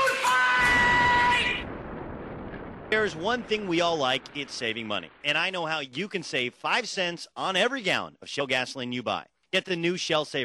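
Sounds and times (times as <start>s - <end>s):
man letting out a loud sustained bellowing yell: 0.0s - 1.6s
speech: 2.9s - 10.4s.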